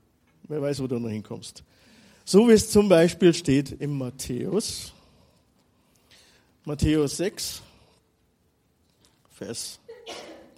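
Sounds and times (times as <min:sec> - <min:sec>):
speech: 0:00.5 - 0:05.0, 0:06.6 - 0:07.7, 0:09.4 - 0:10.3
sneeze or cough: 0:09.9 - 0:10.5.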